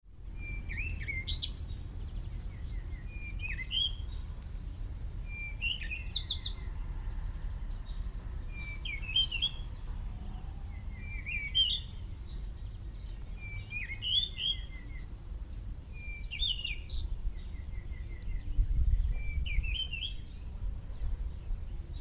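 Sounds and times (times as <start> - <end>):
cape robin chat calling: 0.2 - 22.0.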